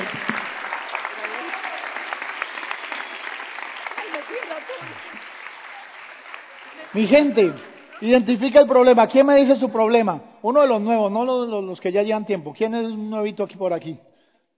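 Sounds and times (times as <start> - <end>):
crowd applauding: 0.0 - 9.0
speech: 7.0 - 14.1.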